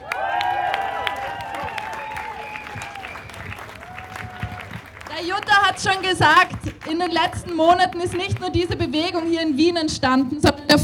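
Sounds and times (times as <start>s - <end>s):
people cheering: 0.0s - 9.2s
sustained audience applause: 0.0s - 9.6s
scattered whistles: 1.5s - 4.7s
speech: 5.2s - 10.8s.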